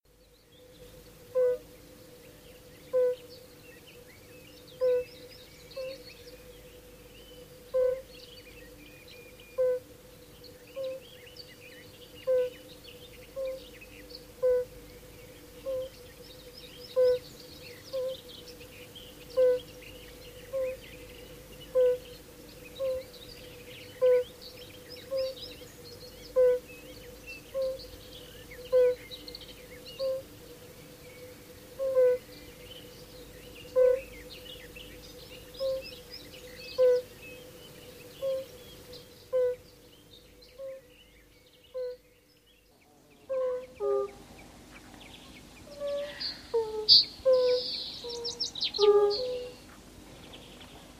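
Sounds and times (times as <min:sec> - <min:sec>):
European fire-bellied toad calling: 0:01.3 - 0:01.6, 0:02.9 - 0:03.2, 0:04.8 - 0:05.1, 0:07.7 - 0:08.0, 0:12.2 - 0:12.5, 0:13.4 - 0:13.6, 0:14.4 - 0:14.7, 0:15.6 - 0:15.9, 0:16.9 - 0:17.2, 0:19.4 - 0:19.7, 0:20.5 - 0:20.8, 0:21.7 - 0:22.1, 0:22.8 - 0:23.1, 0:24.0 - 0:24.4, 0:25.0 - 0:25.4, 0:26.3 - 0:26.7, 0:27.5 - 0:27.9, 0:28.6 - 0:29.1, 0:30.0 - 0:30.3, 0:31.8 - 0:32.2, 0:33.7 - 0:34.1, 0:35.6 - 0:35.9, 0:36.8 - 0:37.1, 0:38.0 - 0:38.6, 0:39.3 - 0:39.6, 0:41.8 - 0:42.0, 0:43.3 - 0:44.2, 0:45.7 - 0:49.6.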